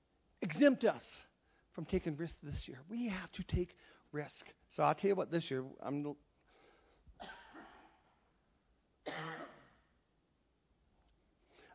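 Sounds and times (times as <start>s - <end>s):
speech: 0.5s - 6.3s, 7.2s - 7.4s
breathing: 1.4s - 1.8s, 3.8s - 4.1s, 6.4s - 7.2s, 11.4s - 11.7s
person coughing: 7.2s - 8.1s, 9.0s - 9.9s
throat clearing: 9.1s - 9.8s.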